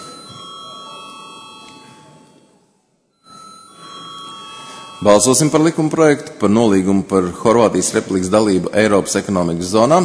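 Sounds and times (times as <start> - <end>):
faint electric bell ringing to call a parliamentary vote: 0.0 - 6.4
speech: 5.0 - 10.0.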